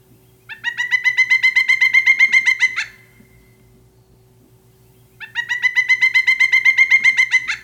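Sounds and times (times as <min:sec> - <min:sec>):
pileated woodpecker whinnying call: 0:00.5 - 0:03.1, 0:05.2 - 0:07.6.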